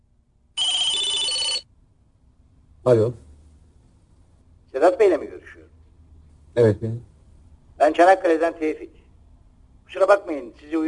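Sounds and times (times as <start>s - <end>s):
old-style telephone bell ringing: 0.6s - 1.7s
speech: 2.8s - 3.2s, 6.6s - 7.1s, 7.8s - 9.0s, 9.9s - 10.8s.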